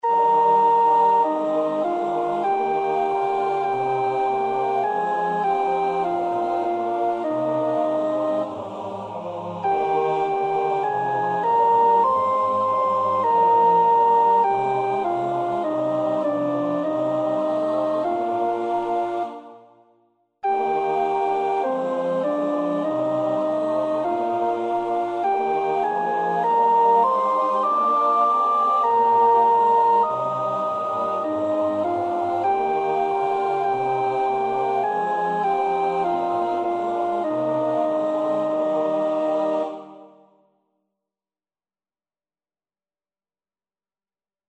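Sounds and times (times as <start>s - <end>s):
soprano singing: 0.0s - 19.6s, 20.5s - 40.2s.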